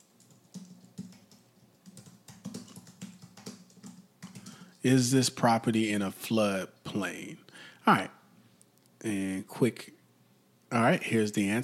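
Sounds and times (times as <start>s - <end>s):
typing on a computer keyboard: 0.0s - 4.8s
speech: 4.8s - 8.2s, 9.0s - 10.0s, 10.7s - 11.6s.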